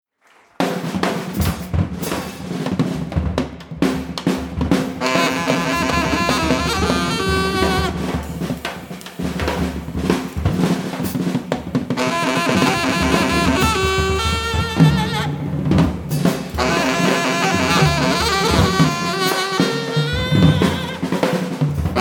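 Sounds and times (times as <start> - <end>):
free jazz music: 0.9 - 21.9.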